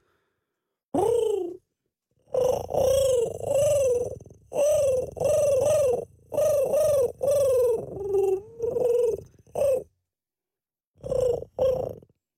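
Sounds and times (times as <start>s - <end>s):
person imitating a dove cooing with throaty rolling coos: 0.9s - 1.6s, 2.2s - 9.9s, 11.0s - 12.1s.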